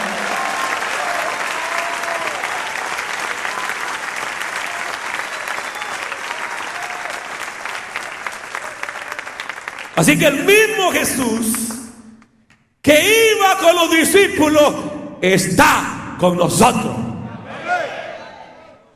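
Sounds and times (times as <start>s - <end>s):
audience applauding: 0.0s - 12.3s
speech: 10.0s - 11.7s, 12.8s - 17.1s.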